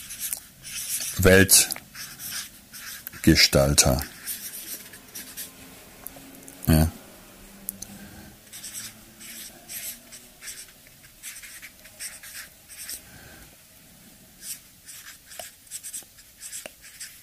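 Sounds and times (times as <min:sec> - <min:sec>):
pen strokes scratching on paper while writing: 0:00.0 - 0:05.5, 0:08.5 - 0:13.0, 0:14.4 - 0:17.2
speech: 0:01.2 - 0:01.8, 0:03.2 - 0:04.2.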